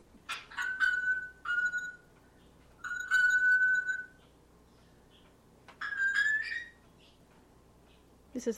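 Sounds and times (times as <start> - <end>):
African grey parrot mimicking a bell ping in a house living room in Fairbanks: 0.3 - 2.1, 2.8 - 4.2, 5.8 - 6.8
speech: 8.4 - 8.5.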